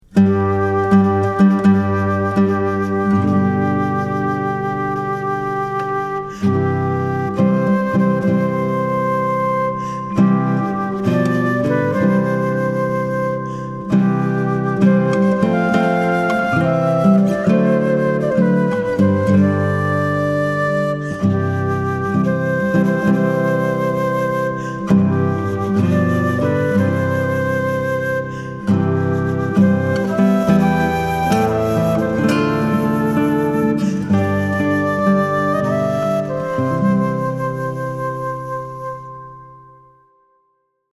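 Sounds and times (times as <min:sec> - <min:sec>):
flute playing a wedding tune: 0:00.0 - 0:40.1.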